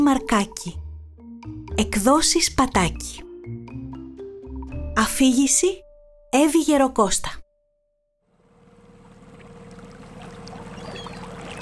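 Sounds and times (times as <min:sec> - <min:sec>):
speech: 0:00.0 - 0:00.8, 0:01.8 - 0:03.2, 0:05.0 - 0:07.4
caique boat engine chugging: 0:08.3 - 0:11.5
water splashing and rushing around a caique hull over waves: 0:08.4 - 0:11.5.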